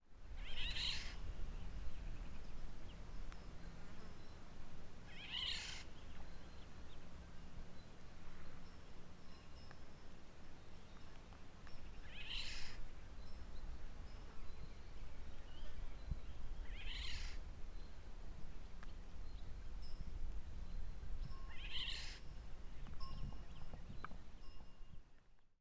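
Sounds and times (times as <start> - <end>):
Eurasian Golden Oriole singing: 0.3 - 4.4, 5.0 - 9.8, 10.5 - 19.9, 20.6 - 24.6.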